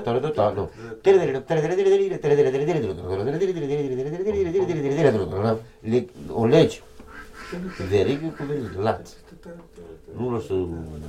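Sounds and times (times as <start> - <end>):
speech: 0.0 - 6.9, 7.5 - 11.0
geese calling in a farmyard: 7.1 - 9.1.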